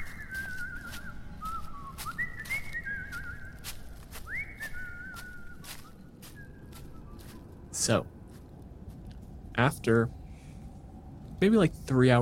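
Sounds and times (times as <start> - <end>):
person whistling a cheerful tune while trudging into the woods: 0.0 - 7.4
steady low rumble: 0.0 - 12.2
speech: 7.9 - 8.2, 9.6 - 10.2, 11.4 - 12.2.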